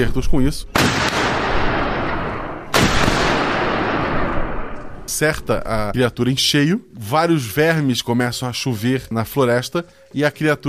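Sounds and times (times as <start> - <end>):
speech: 0.0 - 1.0, 5.2 - 10.6
single sharp gunshot: 0.8 - 5.0.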